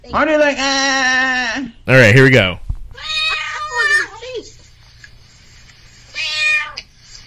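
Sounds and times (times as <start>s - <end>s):
speech: 0.0s - 2.6s
cat meowing: 2.9s - 4.1s, 6.1s - 6.9s.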